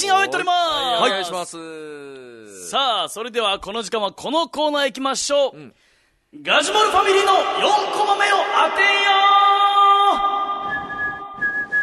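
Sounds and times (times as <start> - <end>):
speech: 0.0 - 9.5
suspenseful whistling from a single whistler: 10.6 - 11.8.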